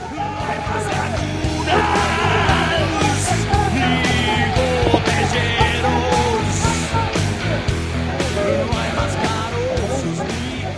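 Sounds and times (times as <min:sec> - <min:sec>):
crowd of students yelling at police: 0:00.0 - 0:10.7
laughter: 0:00.0 - 0:10.7.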